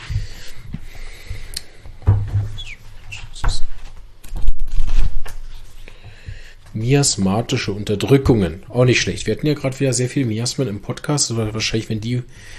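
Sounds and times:
book pages being leafed through: 3.7 - 5.8
speech: 6.8 - 12.5.

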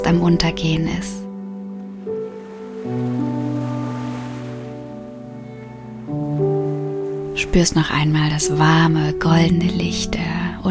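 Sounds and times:
sustained calm musical chords: 0.0 - 10.6
speech: 0.1 - 1.2, 7.4 - 10.6
soft ocean surf at a sandy beach at sunset: 1.9 - 8.6.

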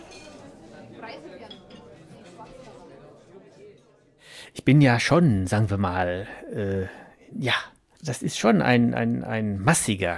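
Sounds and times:
glasses clinking together in a toast: 0.0 - 2.3
speech: 4.7 - 10.1.

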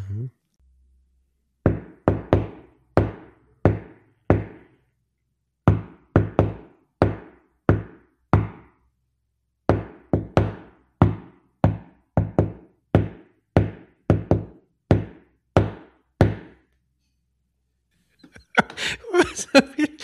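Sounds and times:
knuckle knocks on a tabletop: 1.6 - 4.6, 5.7 - 8.7, 9.7 - 16.6
laughter: 18.2 - 20.0.

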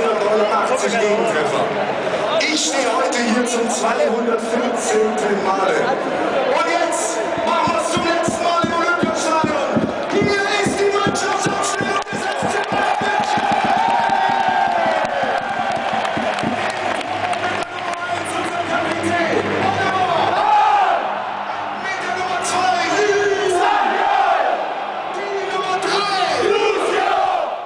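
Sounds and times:
speech: 0.4 - 7.1
football fans singing and chanting en masse in a stadium: 5.7 - 27.6.

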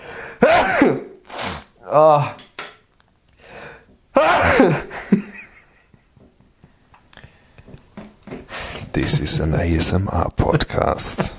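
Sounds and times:
person sneezing: 0.4 - 2.4, 4.2 - 4.8
speech: 1.9 - 2.4, 9.0 - 11.3.

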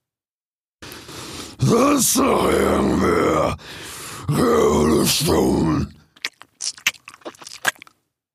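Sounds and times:
speech: 1.6 - 6.0
crunching bite through a small skull: 6.0 - 8.0.

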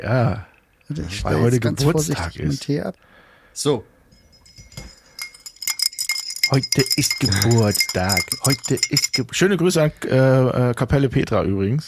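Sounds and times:
speech: 0.0 - 3.9, 6.5 - 11.8
ice cubes clinking and rattling against a glass: 4.4 - 9.4.

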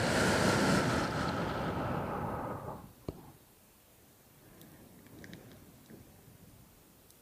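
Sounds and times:
surf washing onto a beach: 0.0 - 2.9.

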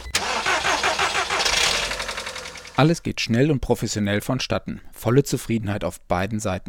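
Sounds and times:
car engine cranking and starting after battery replacement: 0.0 - 2.8
speech: 2.8 - 6.6.

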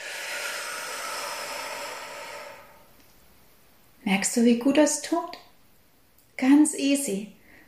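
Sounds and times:
deep forceful exhale during a stress-relief breathing exercise: 0.0 - 2.9
speech: 4.1 - 5.4, 6.4 - 7.4.

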